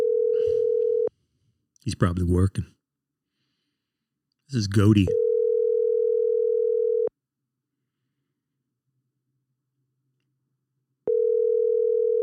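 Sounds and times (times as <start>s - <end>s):
telephone ringback tone of an outgoing call: 0.0s - 1.1s, 5.2s - 7.1s, 11.1s - 12.2s
speech: 1.8s - 2.8s, 4.5s - 5.2s.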